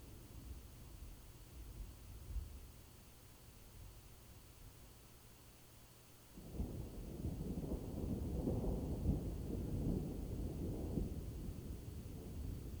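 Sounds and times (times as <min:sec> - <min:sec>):
rolling thunder of an approaching storm: 0:06.4 - 0:12.7.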